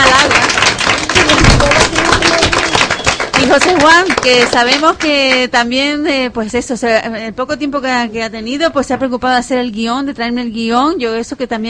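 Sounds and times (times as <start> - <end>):
group of people applauding: 0.0 - 5.5
speech: 3.6 - 11.6.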